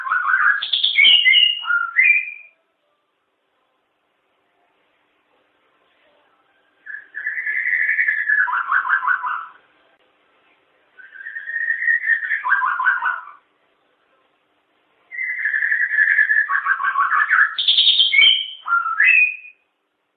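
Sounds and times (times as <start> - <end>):
long-tailed shrike singing whistled note and warbling trill: 0.0 - 3.1, 6.0 - 10.0, 10.9 - 13.5, 15.0 - 19.7.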